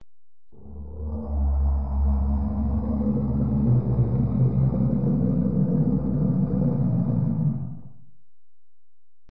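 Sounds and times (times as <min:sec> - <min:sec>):
sci-fi creature sound: 0:00.6 - 0:08.0.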